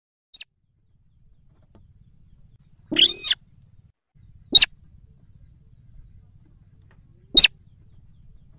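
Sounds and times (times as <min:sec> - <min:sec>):
yellow-vented bulbul calls: 0:01.1 - 0:03.6, 0:04.2 - 0:08.5.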